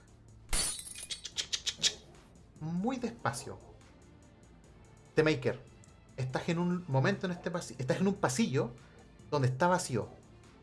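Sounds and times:
window glass shattering: 0:00.5 - 0:01.2
glass shards tinkling as they scatter: 0:00.5 - 0:01.3
speech: 0:02.8 - 0:03.7, 0:05.2 - 0:10.2.

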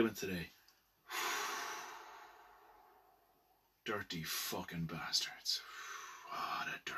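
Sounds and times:
speech: 0:00.0 - 0:01.2, 0:03.9 - 0:06.9
long deep breathy exhale: 0:01.1 - 0:03.1.

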